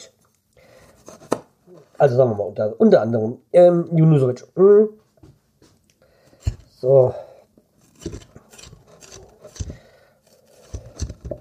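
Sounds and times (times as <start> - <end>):
speech: 1.7 - 5.0, 6.8 - 7.3
knife cutting onions while cooking burekas: 6.4 - 6.8, 7.9 - 11.3.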